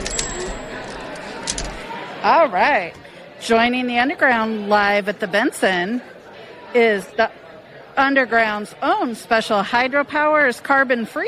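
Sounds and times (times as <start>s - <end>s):
typewriter clacks: 0.0s - 1.8s
speech: 2.2s - 6.1s, 6.7s - 7.4s, 8.0s - 11.2s.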